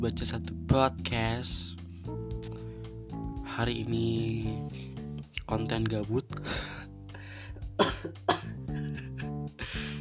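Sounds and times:
speech: 0.0s - 1.8s, 3.6s - 4.8s, 5.5s - 6.6s
steady droning musical background: 0.0s - 10.0s
person coughing: 7.7s - 8.6s.

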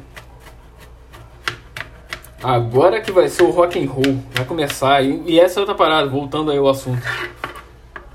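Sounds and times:
knife chopping food on a cutting board: 0.0s - 5.2s
speech: 2.4s - 7.4s.

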